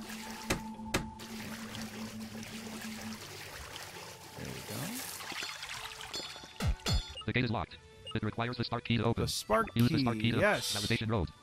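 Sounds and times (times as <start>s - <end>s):
splashing and trickling water as a video game character swims through deep water: 0.0s - 6.8s
speech: 7.3s - 11.4s.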